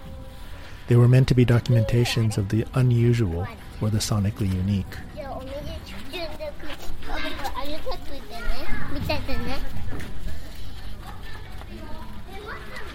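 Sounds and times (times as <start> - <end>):
children chattering and shouting outdoors in a residential area of central Tokyo: 0.0 - 12.9
steady hum of open-air ambience: 0.0 - 12.9
speech: 0.9 - 5.1.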